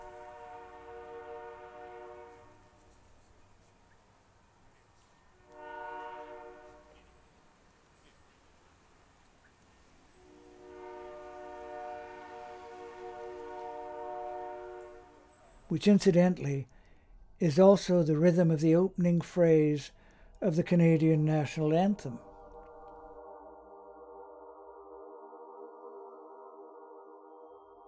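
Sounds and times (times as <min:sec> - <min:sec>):
distant train whistle signalling a level crossing: 0:00.0 - 0:21.4
speech: 0:15.7 - 0:16.7, 0:17.4 - 0:22.3.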